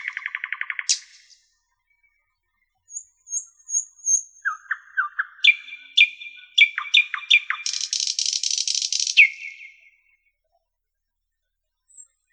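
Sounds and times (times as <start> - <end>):
common nightingale singing: 0.0 - 2.2, 2.9 - 10.2.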